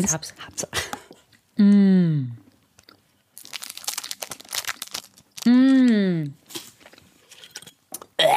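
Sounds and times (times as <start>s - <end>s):
speech: 0.0s - 1.0s, 1.6s - 2.4s
crunching and chewing dark chocolate: 2.8s - 8.2s.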